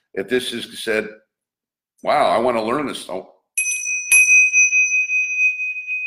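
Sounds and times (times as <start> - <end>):
speech: 0.2 - 1.2, 2.0 - 3.3
bright bell ringing: 3.6 - 6.0.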